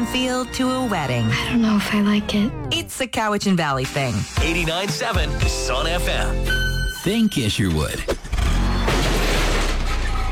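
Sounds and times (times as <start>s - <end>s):
speech: 0.0s - 8.2s
car backing into a green-waste garbage can: 8.4s - 10.3s.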